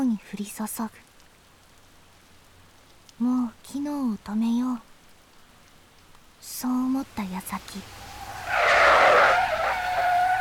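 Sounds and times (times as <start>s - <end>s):
speech: 0.2s - 1.1s, 3.2s - 4.9s, 6.4s - 8.6s
heavy car tires screeching as it brakes hard to a stop: 7.8s - 10.3s.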